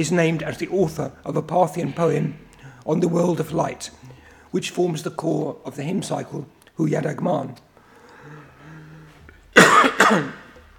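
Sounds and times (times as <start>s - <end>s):
speech: 0.0s - 7.7s, 9.6s - 10.4s
raspy breath: 1.9s - 2.9s, 7.8s - 9.4s
person coughing harshly: 9.6s - 10.6s.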